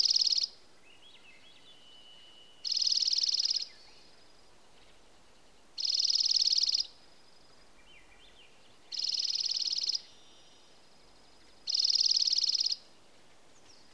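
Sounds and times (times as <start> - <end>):
dark-eyed junco song trills in Alaska: 0.0 - 0.6, 2.6 - 3.7, 5.8 - 6.9, 8.9 - 10.7, 11.6 - 12.8
soft twittering notes: 0.0 - 0.6, 2.6 - 4.0, 5.8 - 6.9, 8.9 - 10.7, 11.7 - 12.8.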